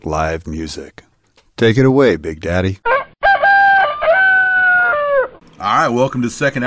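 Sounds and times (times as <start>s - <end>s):
speech: 0.0s - 2.9s, 5.6s - 6.6s
rooster crowing: 2.9s - 5.4s.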